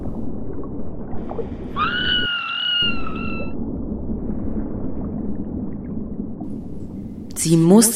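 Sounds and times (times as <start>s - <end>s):
deep bubbling underwater rumble: 0.0s - 7.8s
panicked scream underwater: 1.7s - 3.6s
speech: 7.4s - 7.9s.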